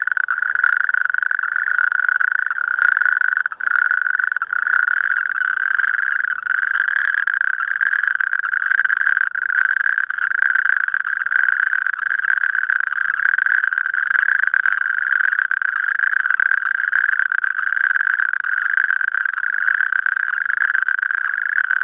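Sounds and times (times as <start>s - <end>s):
Natterjack toad chorus of overlapping rattling trills: 0.0s - 21.8s.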